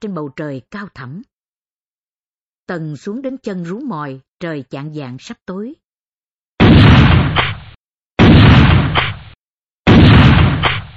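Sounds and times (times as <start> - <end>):
speech: 0.0 - 1.3, 2.7 - 5.8
rifle shots: 6.6 - 10.9.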